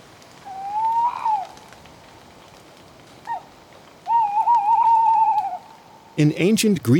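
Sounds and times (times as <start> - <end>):
steady hiss: 0.0 - 6.9
tawny owl Strix aluco hooting: 0.4 - 1.6, 3.2 - 6.2
speech: 6.2 - 6.9.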